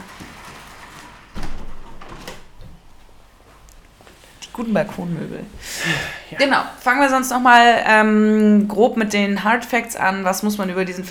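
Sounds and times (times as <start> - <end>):
door pulled shut with a solid thud: 0.0 - 3.3
faint hiss: 0.0 - 7.4
speech: 4.6 - 11.1.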